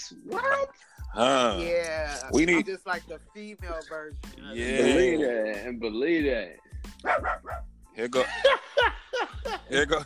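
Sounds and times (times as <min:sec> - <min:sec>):
speech: 0:00.0 - 0:10.0
small pocket dog barking in sharp yaps: 0:07.0 - 0:07.6
laughter: 0:08.2 - 0:10.0.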